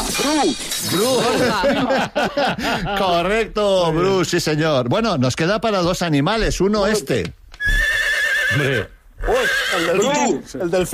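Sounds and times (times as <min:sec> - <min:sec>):
speech: 0:00.3 - 0:07.8, 0:08.5 - 0:10.9
laughter: 0:00.9 - 0:03.5
horse neighing: 0:07.6 - 0:10.4.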